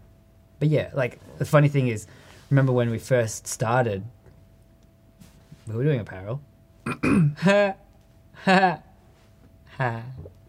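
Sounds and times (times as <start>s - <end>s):
speech: 0.6s - 4.2s, 5.7s - 7.8s, 8.4s - 8.9s, 9.8s - 10.4s
stifled burps: 6.8s - 7.5s.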